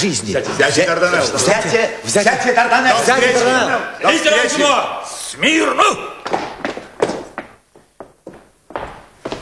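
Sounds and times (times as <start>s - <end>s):
speech: 0.0s - 6.4s
heavy stomping footsteps: 6.2s - 9.4s.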